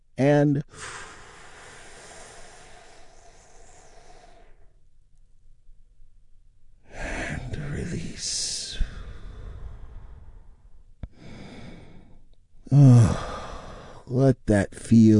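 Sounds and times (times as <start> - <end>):
speech: 0.2 - 1.0, 14.5 - 15.1
deep healing breath during a guided relaxation: 0.7 - 4.9, 8.5 - 14.1.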